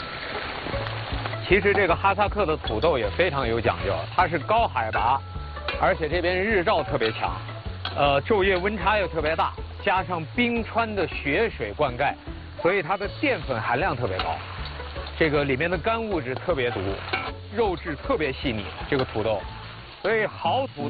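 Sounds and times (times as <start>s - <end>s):
meat and Kazakh potatoes frying in hot pressed peanut oil: 0.0s - 20.8s.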